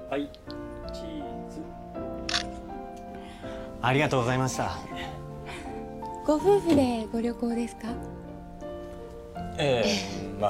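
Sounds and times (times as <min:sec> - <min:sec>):
speech: 0:00.2 - 0:00.4, 0:03.8 - 0:04.9, 0:06.3 - 0:08.2, 0:09.6 - 0:10.4
camera shutter clicks: 0:02.2 - 0:02.6.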